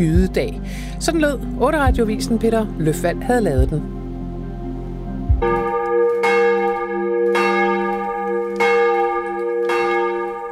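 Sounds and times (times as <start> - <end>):
speech: 0.0 - 4.0
large church bells pealing: 5.4 - 10.5.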